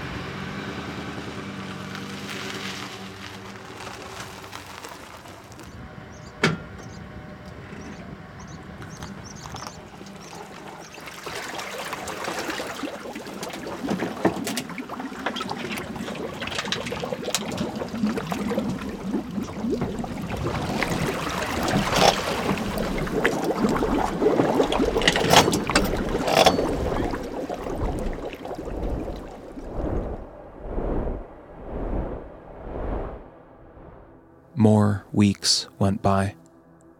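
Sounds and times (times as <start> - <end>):
vehicle engine rumbling while backing a boat down to the water: 0.0 - 10.9, 19.8 - 34.4
water washing at a boat put-in: 9.0 - 33.1
speech: 34.7 - 36.4.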